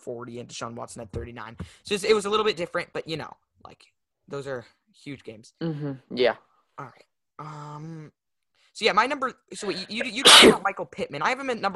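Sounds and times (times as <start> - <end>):
speech: 0.0 - 8.2, 8.8 - 11.7
sharp sneeze: 10.2 - 10.7.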